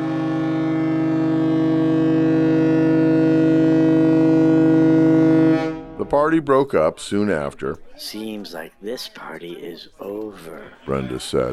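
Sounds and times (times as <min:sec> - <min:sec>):
departing ferry horn blast: 0:00.0 - 0:06.4
speech: 0:06.2 - 0:11.5.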